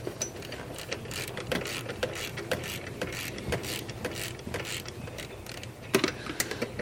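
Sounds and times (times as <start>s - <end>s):
ratchet wrench loosening old idler pulley bolt: 0.2s - 6.1s.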